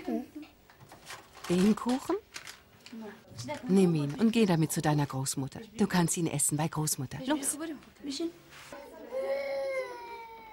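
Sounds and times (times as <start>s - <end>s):
speech: 1.5s - 2.2s, 3.0s - 8.7s
small girl crying: 9.1s - 10.5s.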